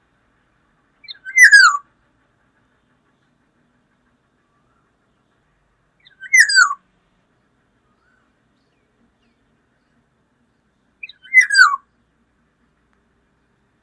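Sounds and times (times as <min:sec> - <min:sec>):
Black-naped oriole calls: 0:01.0 - 0:06.8, 0:11.0 - 0:11.9.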